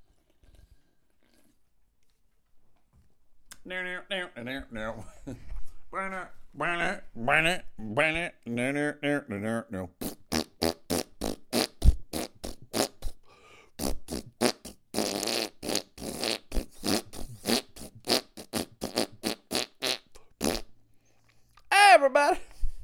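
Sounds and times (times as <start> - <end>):
speech: 3.6 - 10.8
short blatty fart noises: 10.0 - 13.2, 13.8 - 20.8.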